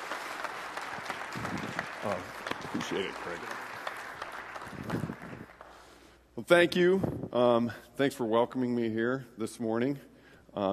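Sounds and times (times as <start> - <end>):
room full of people clapping: 0.0 - 5.8
speech: 2.1 - 3.7, 6.4 - 10.7.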